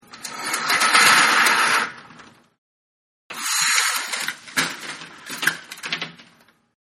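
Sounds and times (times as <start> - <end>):
blinds being opened: 0.0 - 2.4, 3.3 - 6.6
blinds shaking and rattling: 0.1 - 2.3, 3.6 - 6.4.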